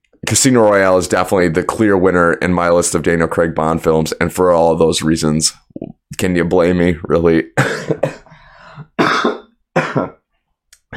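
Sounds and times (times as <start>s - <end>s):
speech: 0.3s - 8.2s, 9.0s - 10.2s
harsh coughs with a throaty rasp: 7.6s - 10.2s.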